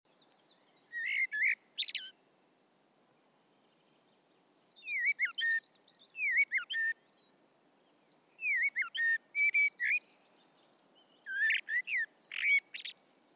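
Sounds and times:
soft background hiss: 0.1 - 13.3
common blackbird Turdus merula singing: 0.2 - 2.2, 4.7 - 7.3, 8.0 - 10.2, 11.0 - 13.3.

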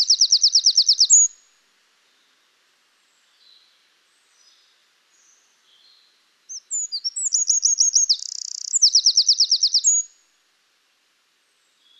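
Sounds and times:
Eurasian wren Troglodytes troglodytes song with rattling trills: 0.0 - 1.4, 2.0 - 10.2.

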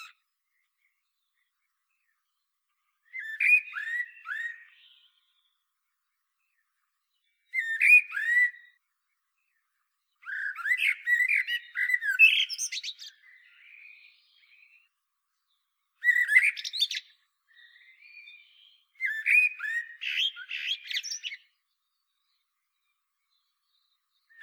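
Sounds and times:
common blackbird Turdus merula singing: 3.0 - 5.6, 6.4 - 8.8, 9.4 - 24.4.

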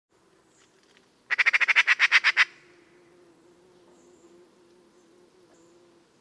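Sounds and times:
Eurasian magpie (Pica pica) chatter call: 1.3 - 2.6.

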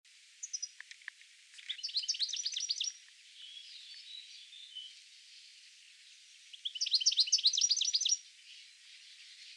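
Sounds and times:
European goldfinch Carduelis carduelis calling and twittering: 0.4 - 0.8, 1.6 - 4.9, 6.5 - 8.2.

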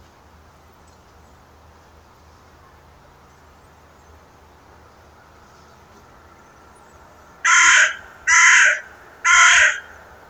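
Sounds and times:
carrion crow Corvus corone cawing: 7.4 - 10.2.

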